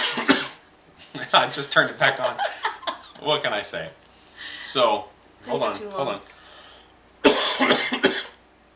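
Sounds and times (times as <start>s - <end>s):
harsh chesty cough: 0.0s - 0.6s, 7.2s - 8.4s
laughter: 1.2s - 3.3s
speech: 1.3s - 2.6s, 3.2s - 4.0s, 4.7s - 6.4s.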